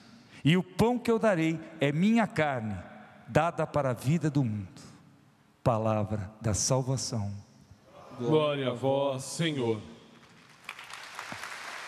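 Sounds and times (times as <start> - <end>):
speech: 0.4 - 4.9, 5.6 - 7.5, 8.2 - 9.9
audience applauding in a large indoor space: 10.3 - 11.8.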